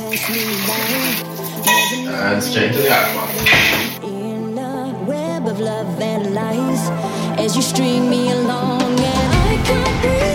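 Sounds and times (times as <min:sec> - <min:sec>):
water pouring and draining while straining blanched herbs: 0:00.0 - 0:04.0
speech: 0:00.2 - 0:04.4, 0:05.6 - 0:10.2.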